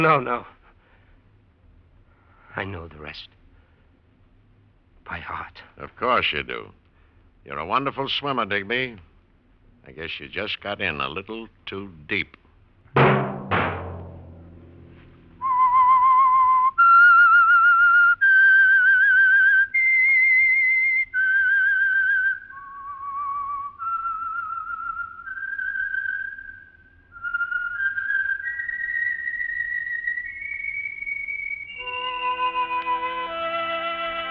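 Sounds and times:
speech: 0.0s - 0.6s, 2.6s - 3.4s, 5.1s - 6.8s, 7.4s - 9.1s, 9.8s - 13.2s
sharp strike: 13.0s - 15.5s
lone whistled melody: 15.4s - 34.2s.

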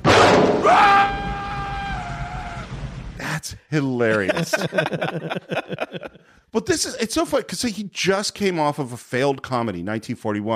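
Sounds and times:
loud noisy crash: 0.0s - 3.2s
woman screaming in a film scene: 0.6s - 2.6s
speech: 3.7s - 10.5s
laughter: 4.0s - 6.4s.

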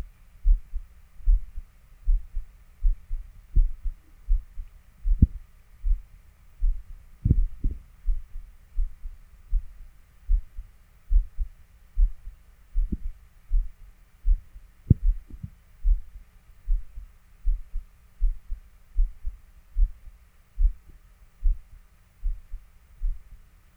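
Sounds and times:
heartbeat thudding: 0.0s - 23.4s
faint steady high hum: 0.0s - 23.7s.

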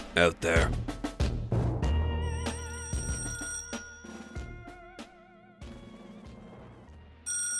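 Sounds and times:
speech: 0.2s - 0.9s
telephone bell ringing: 2.2s - 4.6s, 7.3s - 7.5s.

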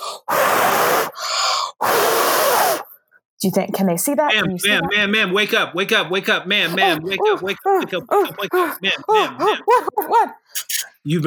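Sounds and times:
heavy labored breathing: 0.0s - 3.2s, 6.4s - 10.6s
speech: 3.4s - 11.2s
laughter: 4.3s - 10.4s.

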